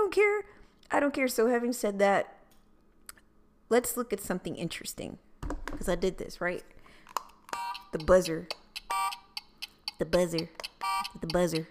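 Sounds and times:
speech: 0:00.1 - 0:02.4, 0:03.7 - 0:06.8, 0:07.9 - 0:08.6, 0:10.0 - 0:11.6
harsh game show buzzer: 0:07.6 - 0:11.6.

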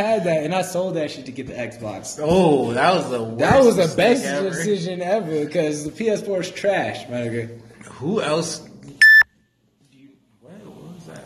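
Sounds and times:
speech: 0:00.0 - 0:08.7
electronic phone notification beep: 0:09.0 - 0:09.3.

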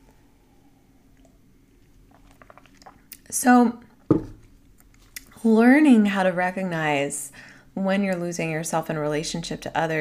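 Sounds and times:
sipping tea: 0:01.2 - 0:03.3
speech: 0:03.3 - 0:03.8, 0:05.4 - 0:09.9.

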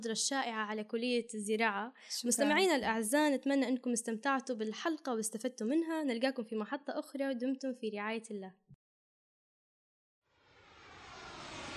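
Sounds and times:
speech: 0:00.0 - 0:08.6
airplane engine roar: 0:10.6 - 0:11.7.

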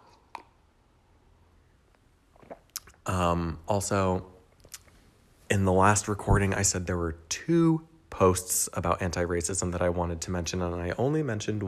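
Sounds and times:
person swallowing coffee: 0:02.3 - 0:03.3
soft wet sips of coffee: 0:02.3 - 0:03.3
speech: 0:03.2 - 0:04.3, 0:05.5 - 0:11.6.

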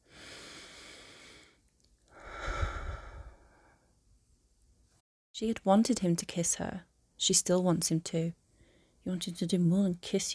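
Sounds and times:
deep breath: 0:00.0 - 0:04.0, 0:08.5 - 0:09.0
speech: 0:05.4 - 0:08.4, 0:09.0 - 0:10.3.

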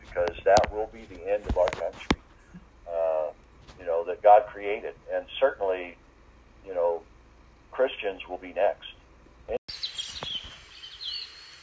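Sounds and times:
quiet outdoor hum: 0:00.0 - 0:11.6
speech: 0:04.6 - 0:06.0, 0:07.8 - 0:09.0
birds tweeting: 0:09.7 - 0:11.6.

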